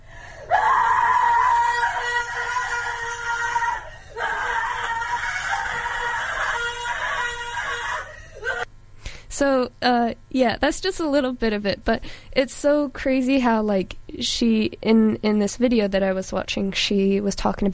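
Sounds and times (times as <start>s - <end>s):
woman screaming in a recording booth: 0.4s - 8.7s
speech: 9.4s - 17.7s.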